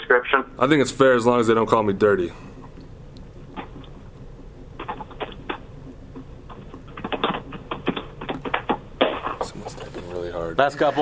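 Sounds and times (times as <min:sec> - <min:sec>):
speech: 0:00.3 - 0:02.5, 0:10.6 - 0:11.0
loud hard clacky keyboard typing: 0:04.8 - 0:09.5.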